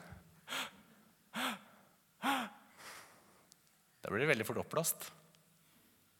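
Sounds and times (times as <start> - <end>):
sharp breaths drawn in through the mouth: 0.0 - 3.4
speech: 4.1 - 5.2.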